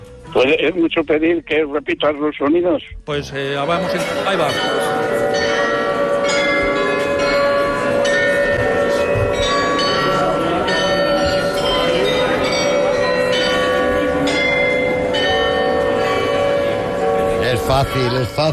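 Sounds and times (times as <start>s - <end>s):
speech: 0.4s - 5.2s, 17.7s - 18.5s
carillon bells of the city hall in Munich Germany ringing: 3.8s - 18.5s.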